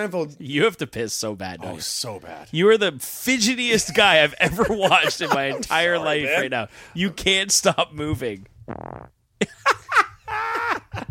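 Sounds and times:
speech: 0.0 - 9.8
laughter: 3.7 - 6.6, 9.4 - 11.0
loud fart noises with buzzy blasts and squeal: 8.6 - 9.2.

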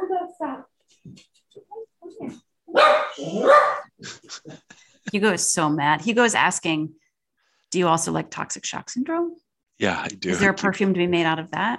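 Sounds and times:
speech: 2.3 - 3.7, 5.2 - 7.0, 7.7 - 11.7
dog barking: 2.7 - 3.9.

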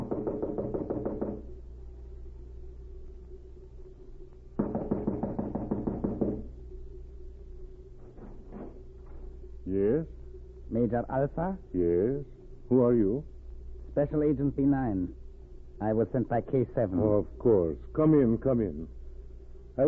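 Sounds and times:
rapid firm knocking on a wooden cottage door: 0.0 - 1.5, 4.6 - 6.5
steady low hum: 0.0 - 19.8
speech: 10.8 - 13.3, 14.0 - 15.2, 15.8 - 19.0.

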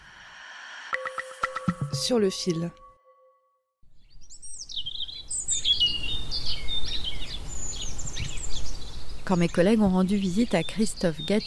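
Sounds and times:
speech: 2.0 - 2.8, 9.3 - 11.4
birds singing in a vegetable garden in spring: 4.0 - 11.4.

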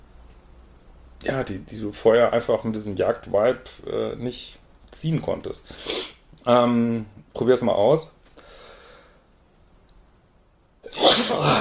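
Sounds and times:
speech: 1.2 - 8.2
person sneezing: 10.8 - 11.6.

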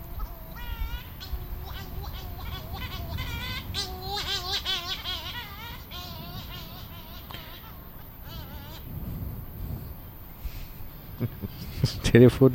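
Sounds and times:
laughter: 0.0 - 8.9, 10.8 - 12.3
many seagulls calling with wavering laughing cries: 0.0 - 12.2
steady wash of surf: 0.0 - 12.5
speech: 12.1 - 12.5.

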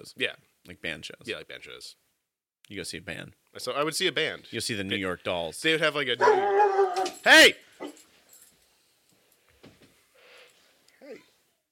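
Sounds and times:
speech: 0.0 - 2.0, 2.7 - 7.7
single short faint dog bark: 6.2 - 7.2.

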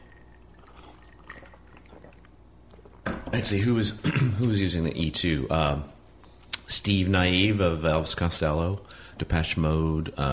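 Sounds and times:
sipping a drink: 0.0 - 3.0
speech: 3.3 - 6.0, 6.7 - 10.3.

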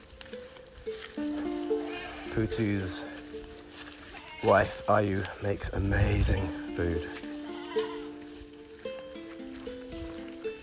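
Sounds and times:
faint outdoor background: 0.0 - 10.6
goats bleating at a family's house: 1.4 - 8.7
speech: 2.4 - 3.2, 4.4 - 7.2.

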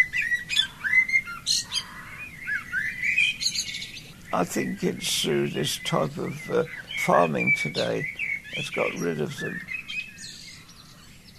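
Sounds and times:
dawn chorus of birds chirping and singing: 0.0 - 11.3
speech: 4.3 - 9.7.

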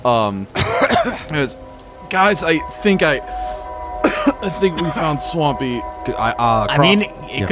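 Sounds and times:
speech: 0.0 - 3.4, 4.4 - 7.4
voice imitating a fit of coughing through dust: 0.6 - 1.2.

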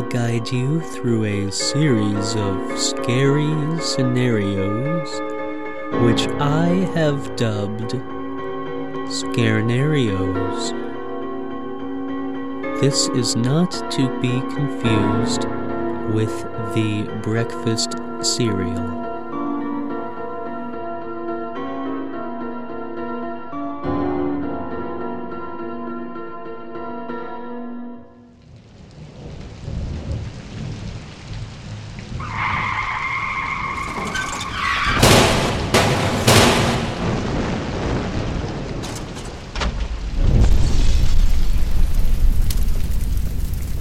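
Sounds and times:
sustained musical tones: 0.0 - 28.4
speech: 0.1 - 5.3, 5.9 - 8.1, 9.1 - 10.8, 12.8 - 19.0
car tires screeching: 32.2 - 36.0
loud crashing impacts of a car crash: 33.8 - 43.7.

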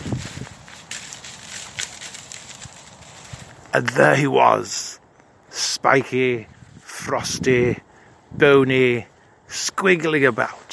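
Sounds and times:
leaves and twigs rustling and crackling within bushes: 0.0 - 5.5, 6.5 - 7.0, 9.0 - 10.7
speech: 3.8 - 4.9, 5.8 - 10.6.

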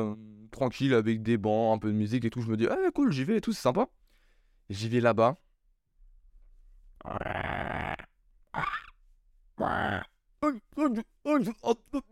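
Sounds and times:
speech: 0.0 - 4.0, 4.7 - 5.4, 7.0 - 7.6, 9.6 - 12.1
person imitating zombie groans: 7.0 - 9.0, 9.6 - 10.2.

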